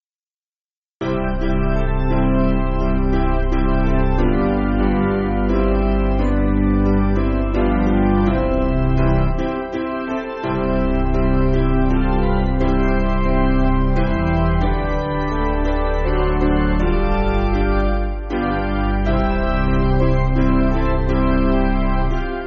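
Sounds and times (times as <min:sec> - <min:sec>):
piano backing music for churches: 0:01.0 - 0:22.4.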